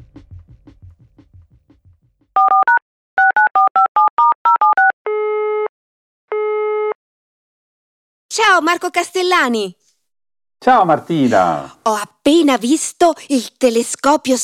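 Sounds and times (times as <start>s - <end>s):
short two-tone telephone keypad beeps: 2.4s - 4.9s
long steady telephone ringing tones: 2.4s - 5.7s
speech: 8.6s - 9.8s, 10.6s - 14.4s.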